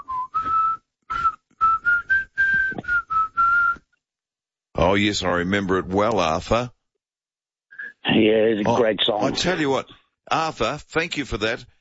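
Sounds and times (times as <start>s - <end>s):
person whistling a melodic tune: 0.0s - 4.0s
speech: 4.9s - 6.8s, 8.2s - 11.8s.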